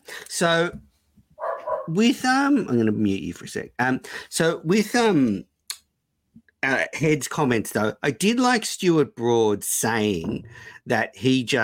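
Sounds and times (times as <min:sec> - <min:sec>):
speech: 0:00.4 - 0:00.9, 0:01.9 - 0:05.5, 0:06.6 - 0:11.6
dog barking: 0:01.4 - 0:02.0.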